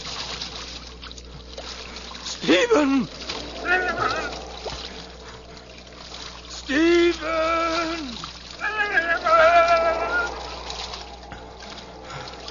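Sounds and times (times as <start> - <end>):
swiftly flowing water: 0.0 - 12.4
speech: 2.4 - 4.2
person calling out sharply: 2.4 - 4.5, 6.5 - 10.4.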